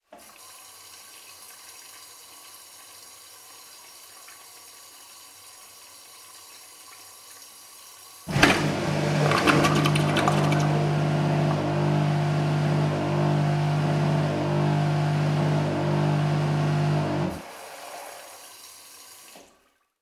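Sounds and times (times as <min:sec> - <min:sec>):
household toilet flush with macerator: 0:08.2 - 0:19.6.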